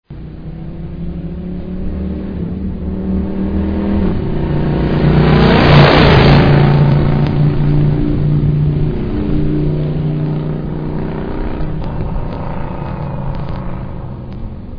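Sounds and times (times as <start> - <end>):
2002 Suzuki VS1400 GLP Intruder motorcycle driving by: 0.2 - 14.7.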